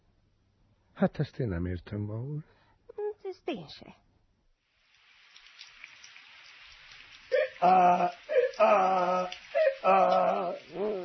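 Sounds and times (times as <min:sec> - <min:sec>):
speech: 0:01.0 - 0:02.6, 0:03.4 - 0:04.0, 0:07.6 - 0:11.0
heavy pouring rain: 0:04.6 - 0:11.0.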